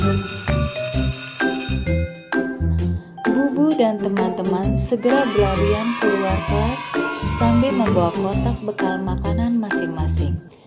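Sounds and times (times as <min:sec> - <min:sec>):
school bell chime melody: 0:00.0 - 0:02.6
speech: 0:03.8 - 0:10.6.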